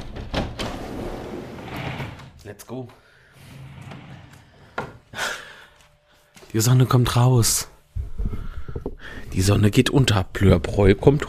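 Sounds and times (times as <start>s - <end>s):
door being pushed open or shut with scraping sliding sound: 0.0s - 2.4s, 3.4s - 5.0s
speech: 2.5s - 3.0s, 6.5s - 7.7s, 9.3s - 11.2s.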